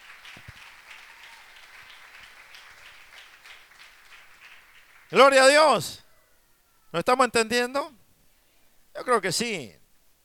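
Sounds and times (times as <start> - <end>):
church congregation applauding: 0.0 - 5.9
speech: 5.1 - 6.0, 6.9 - 8.0, 9.0 - 9.8.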